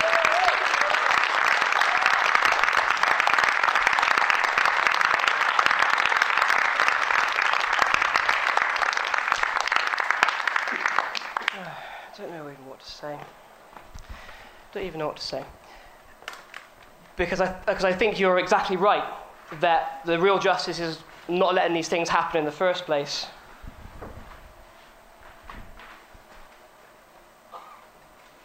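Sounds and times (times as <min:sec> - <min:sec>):
dense applause from a live audience: 0:00.0 - 0:12.0
speech: 0:14.8 - 0:15.6, 0:17.2 - 0:23.4.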